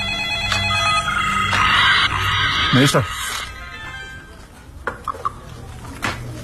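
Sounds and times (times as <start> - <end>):
telephone ringing with an incoming call, bright electronic tone: 0.0 - 4.5
speech: 2.7 - 3.2.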